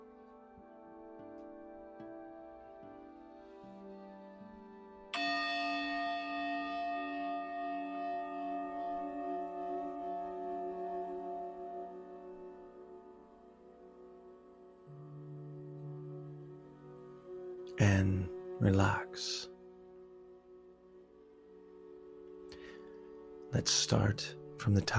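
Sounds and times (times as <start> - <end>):
soft sustained drone: 0.0 - 24.9
meditation bell ringing: 5.1 - 13.8
speech: 17.8 - 19.5, 23.6 - 24.9.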